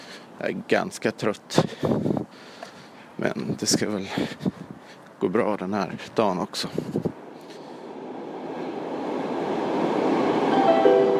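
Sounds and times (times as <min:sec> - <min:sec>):
speech: 0:00.4 - 0:02.2, 0:03.2 - 0:04.6, 0:05.2 - 0:07.1
low rumble inside a moving train: 0:06.7 - 0:11.1.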